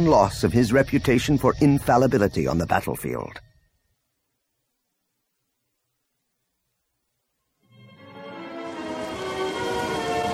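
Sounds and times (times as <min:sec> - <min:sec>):
speech: 0:00.0 - 0:03.4
heavy rain: 0:08.8 - 0:10.3.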